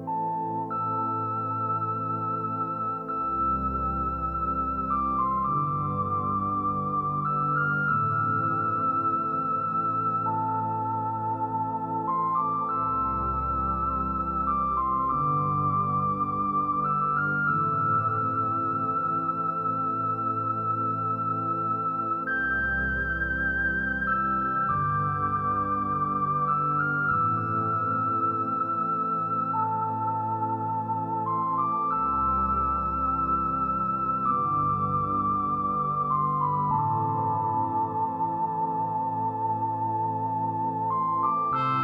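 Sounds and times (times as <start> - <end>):
flutey tone: 0.1 - 41.8.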